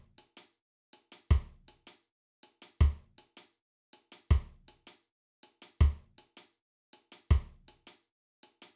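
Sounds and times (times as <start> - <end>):
reggae drum beat: 1.3 - 1.5, 4.3 - 4.5, 7.3 - 7.5.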